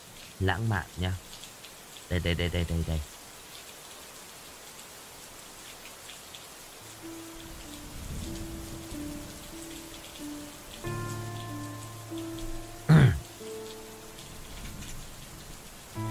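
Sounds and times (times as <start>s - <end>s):
heavy rain falling: 0.0s - 16.1s
speech: 0.4s - 1.3s, 2.1s - 3.2s
faint sustained low musical tones: 6.8s - 16.1s.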